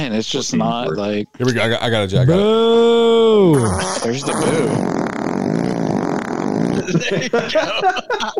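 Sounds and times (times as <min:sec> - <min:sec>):
speech: 0:00.0 - 0:05.0, 0:06.8 - 0:08.3
loud buzzy fart sound effect: 0:03.5 - 0:06.9
laughter: 0:06.8 - 0:08.3.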